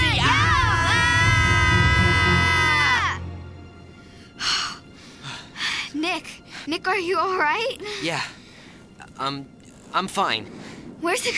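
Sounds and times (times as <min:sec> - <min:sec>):
people yelling loudly to scare a cougar: 0:00.0 - 0:03.2
speech: 0:06.7 - 0:08.4, 0:09.2 - 0:11.3.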